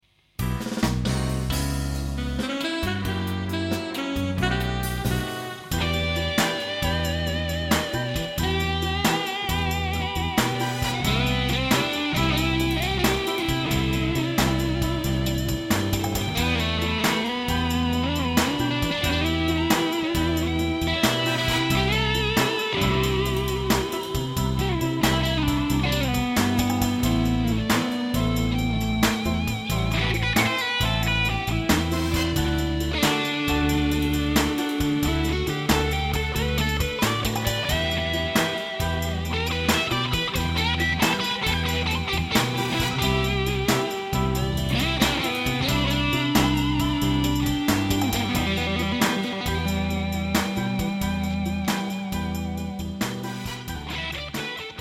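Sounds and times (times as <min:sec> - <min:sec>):
VOX Satchurator blues ballad: 0:00.5 - 0:54.8.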